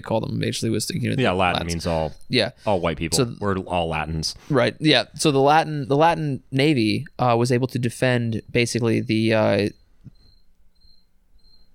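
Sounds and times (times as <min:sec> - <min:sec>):
speech: 0:00.0 - 0:09.8
cricket chirping: 0:08.9 - 0:11.7.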